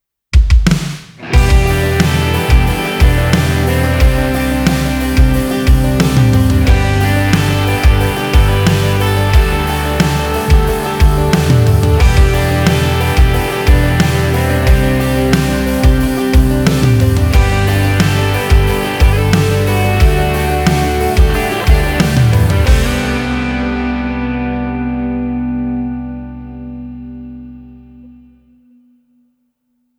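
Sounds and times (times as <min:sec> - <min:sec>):
country music sample track: 0:01.2 - 0:28.2.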